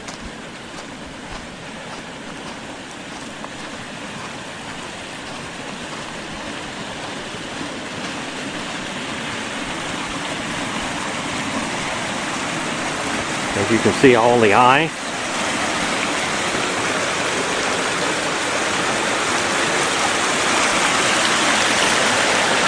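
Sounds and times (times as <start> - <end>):
creek water flowing over rocks: 0.0 - 22.6
speech: 13.7 - 15.0.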